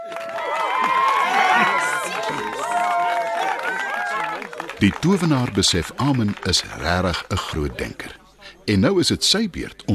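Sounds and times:
higher whoops rising above the crowd: 0.0 - 4.4
crowd of spectators cheering and shouting: 0.0 - 4.5
speech: 4.8 - 9.9.

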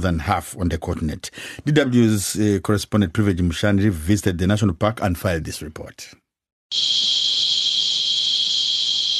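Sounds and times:
speech: 0.0 - 7.3
cicadas buzzing: 6.7 - 9.1.

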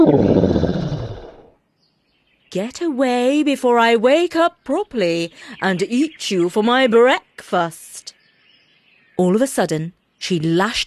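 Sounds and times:
tiger growling: 0.0 - 1.5
speech: 2.5 - 8.1, 9.2 - 10.8.

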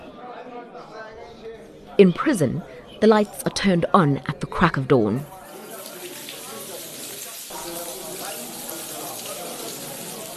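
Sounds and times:
faint voices: 0.0 - 10.3
speech: 0.8 - 5.3
running shower water in a prison: 5.3 - 10.3.

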